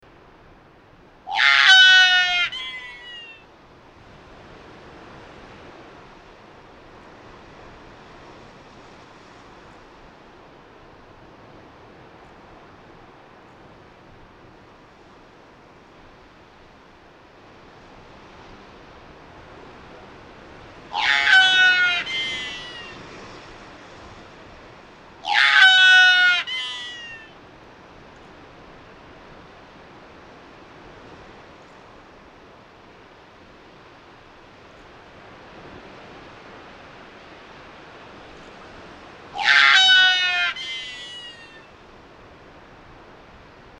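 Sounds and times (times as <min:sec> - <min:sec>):
light-mantled albatross calling: 0:01.3 - 0:03.4, 0:20.8 - 0:23.4, 0:25.2 - 0:27.4, 0:39.3 - 0:41.8.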